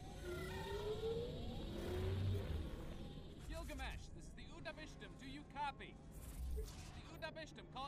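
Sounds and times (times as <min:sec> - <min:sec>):
failing spaceship engine roaring and whining through a forest: 0:00.0 - 0:03.4
speech: 0:03.8 - 0:07.8.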